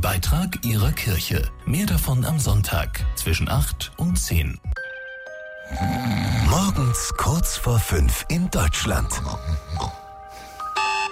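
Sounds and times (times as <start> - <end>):
speech: 0.0 - 4.8, 5.7 - 6.1, 7.0 - 10.0
alarm clock with bright electronic ring: 10.6 - 11.1.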